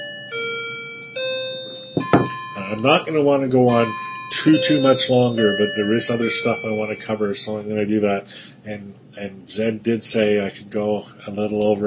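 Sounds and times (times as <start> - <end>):
clock chiming bell-like tones: 0.0 - 7.7
sharp knock: 2.0 - 2.4
speech: 2.7 - 11.8.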